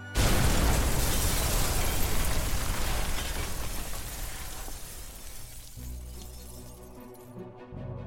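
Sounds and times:
bomb explosion set off with fuses inside a house on a winter night: 0.2s - 4.9s.

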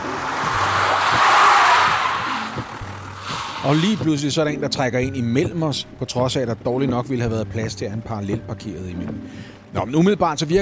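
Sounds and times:
car engine low rumble: 0.0s - 4.8s
car tires screeching under hard braking: 0.0s - 5.0s
speech: 3.6s - 10.6s.

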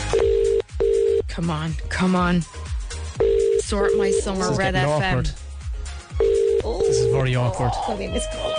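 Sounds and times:
outgoing phone call ringback tone: 0.1s - 1.2s, 3.2s - 4.7s, 6.2s - 7.4s
speech: 1.4s - 2.6s, 3.7s - 5.4s, 6.6s - 8.5s.

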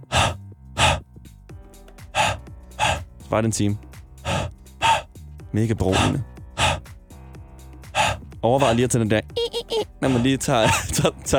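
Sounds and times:
huffs of breath onto a CD to clean it: 0.0s - 1.2s, 2.0s - 3.2s, 4.2s - 5.2s, 5.9s - 7.0s, 7.8s - 8.3s, 10.0s - 10.4s
speech: 3.3s - 3.9s, 5.5s - 6.3s, 8.4s - 9.4s, 10.0s - 11.3s
laughter: 9.4s - 11.3s.

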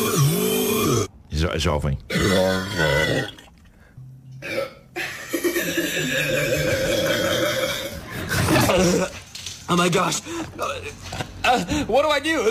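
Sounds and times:
loud burp and drawn-out gurgling belch: 0.0s - 1.1s, 2.1s - 3.6s, 4.4s - 9.1s
speech: 1.4s - 3.4s, 9.7s - 12.4s.

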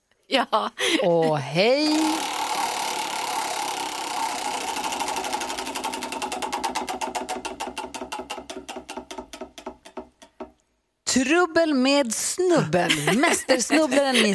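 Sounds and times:
speech: 0.3s - 2.4s, 11.2s - 14.3s
laughter: 0.8s - 1.4s, 12.9s - 14.3s
spinning wheel clicking: 1.8s - 10.0s.

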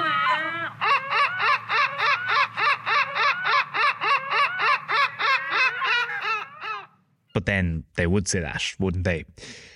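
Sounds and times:
seagull giving harsh yelping laughing calls: 0.0s - 7.0s
speech: 7.4s - 9.7s.

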